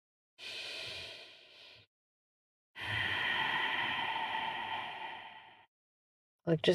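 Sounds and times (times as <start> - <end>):
slow mindful breath: 0.4 - 1.9, 2.8 - 5.7.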